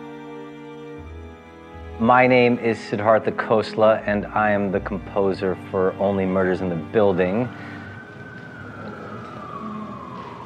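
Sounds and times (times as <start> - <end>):
speech: 2.0 - 7.8
police siren in a music score wailing: 6.1 - 10.4.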